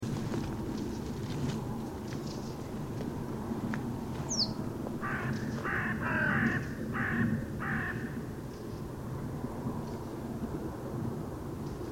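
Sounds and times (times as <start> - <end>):
steady low rumbling background noise: 0.0 - 11.9
Carrion crow Corvus corone giving harsh hoarse caws: 5.0 - 8.2.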